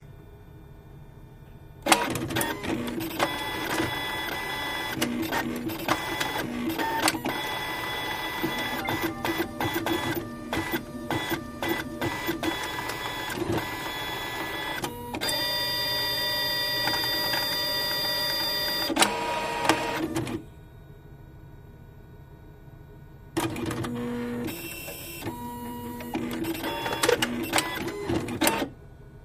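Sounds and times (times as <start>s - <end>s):
machine printer hum: 1.8s - 29.2s.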